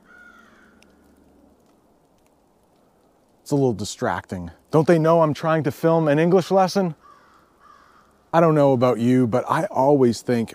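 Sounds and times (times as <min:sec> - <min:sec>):
crows cawing and squabbling at a distance: 0:00.0 - 0:01.8, 0:06.8 - 0:08.4
speech: 0:03.5 - 0:07.1, 0:08.3 - 0:10.5.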